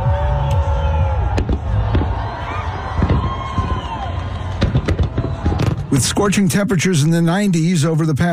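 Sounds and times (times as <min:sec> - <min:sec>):
roar of a large outdoor crowd: 0:00.0 - 0:06.4
scattered voices and cheers: 0:00.0 - 0:06.6
Fourth of July fireworks in New York popping and banging: 0:01.3 - 0:06.7
speech: 0:06.0 - 0:08.3.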